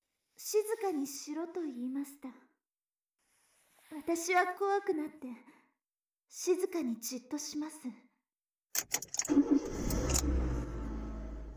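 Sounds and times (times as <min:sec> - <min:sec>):
speech: 0:00.4 - 0:02.5, 0:03.9 - 0:05.6, 0:06.3 - 0:08.0, 0:08.8 - 0:10.3
keys jingling: 0:08.8 - 0:10.2
car engine starting and pulling away: 0:08.8 - 0:11.5.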